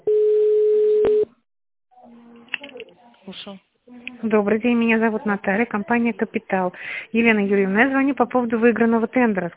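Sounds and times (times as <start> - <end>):
telephone line tone while a caller is put on hold and transferred: 0.1 - 1.3
speech: 4.3 - 9.5.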